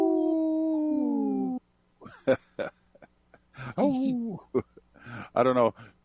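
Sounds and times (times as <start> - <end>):
people imitating wolf howls and yips: 0.0 - 1.6
speech: 2.3 - 2.8, 3.6 - 4.7, 5.4 - 6.0.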